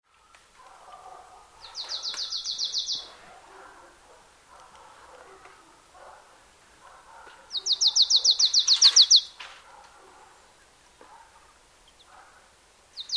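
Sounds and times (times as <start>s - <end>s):
Marsh tit Poecile palustris giving rapid repeated high notes: 1.6s - 3.2s, 7.5s - 9.4s, 13.0s - 13.1s.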